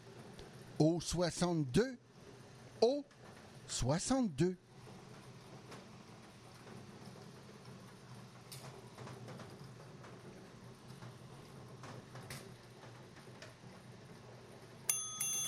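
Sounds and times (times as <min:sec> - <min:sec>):
speech: 0:00.8 - 0:02.0, 0:02.8 - 0:04.6
bright metallic bell ringing for incoming calls: 0:14.9 - 0:15.4.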